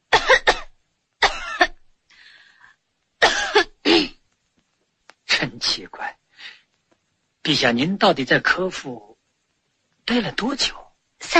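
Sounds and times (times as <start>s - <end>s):
harsh coughs: 0.1s - 1.8s, 3.2s - 4.2s
speech: 5.7s - 6.6s, 7.5s - 9.1s, 10.1s - 11.3s.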